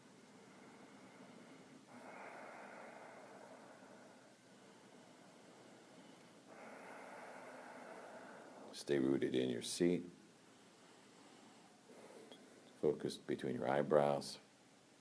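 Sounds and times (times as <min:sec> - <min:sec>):
slow raspy ujjayi breathing through the nose: 0:00.0 - 0:08.8, 0:10.5 - 0:12.6
speech: 0:08.8 - 0:10.2, 0:12.8 - 0:14.4.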